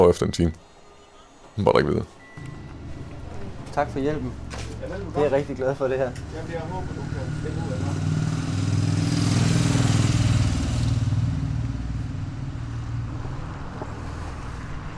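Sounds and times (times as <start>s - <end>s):
speech: 0.0s - 0.7s, 1.6s - 2.5s, 3.8s - 7.9s
small two-stroke moped engines buzzing and revving around a bus station: 2.2s - 14.9s.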